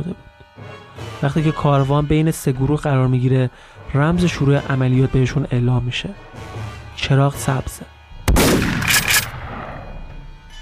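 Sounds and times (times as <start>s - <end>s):
speech: 1.2s - 7.9s
single sharp gunshot with long rumbling echo: 8.2s - 10.0s.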